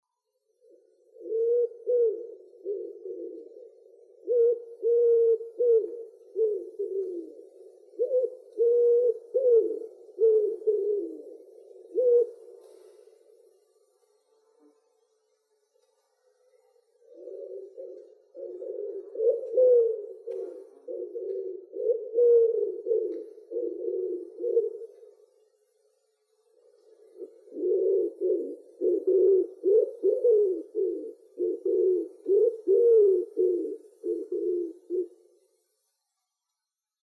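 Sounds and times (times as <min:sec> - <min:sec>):
Eurasian collared dove: 0:00.0 - 0:14.0, 0:15.8 - 0:25.7, 0:26.4 - 0:36.6.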